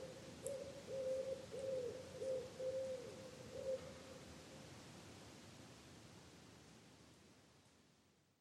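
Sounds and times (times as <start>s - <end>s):
common wood pigeon cooing: 0.0s - 3.9s
background hiss: 0.0s - 8.4s.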